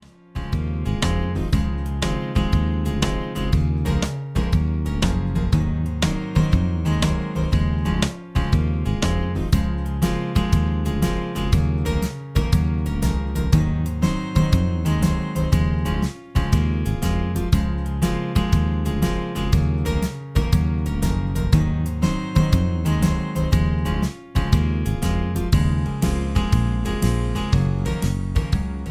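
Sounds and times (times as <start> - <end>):
happy guitar ringtone: 0.4 - 28.8.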